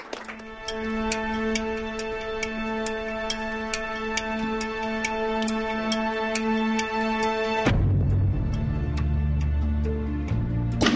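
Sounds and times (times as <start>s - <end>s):
deeper lower music: 0.2s - 10.9s
clock ticking: 0.3s - 7.8s
sustained droning tone: 0.3s - 8.7s.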